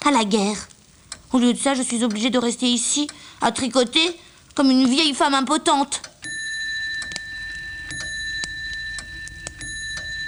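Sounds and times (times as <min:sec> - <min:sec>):
pendulum clock ticking: 0:00.0 - 0:10.2
speech: 0:00.1 - 0:00.7, 0:01.3 - 0:06.1
pendulum clock striking six o'clock: 0:06.0 - 0:10.2.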